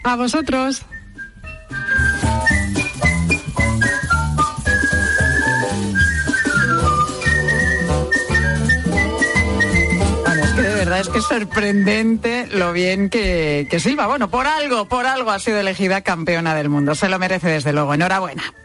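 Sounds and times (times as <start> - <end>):
speech: 0.0 - 1.0, 11.0 - 18.6
instrumental backing track: 0.0 - 18.6
woman whistling a clear bright melody: 0.9 - 10.8.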